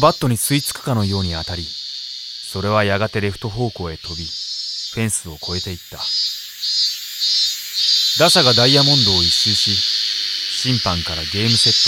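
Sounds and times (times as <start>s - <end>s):
speech: 0.0s - 1.8s, 2.5s - 6.9s, 8.2s - 9.9s, 10.6s - 11.8s
cicadas buzzing: 0.0s - 11.8s.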